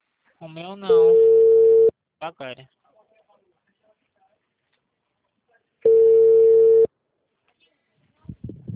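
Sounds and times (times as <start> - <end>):
speech: 0.4 - 1.4, 2.2 - 2.8
telephone busy tone after a dropped call: 1.1 - 1.9, 5.9 - 6.9.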